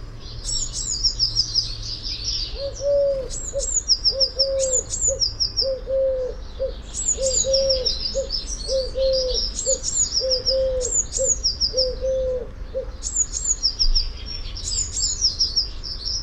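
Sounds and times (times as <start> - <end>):
Eurasian blue tit Cyanistes caeruleus calling: 0.2 - 16.2
soft low hooting coo: 2.5 - 13.0.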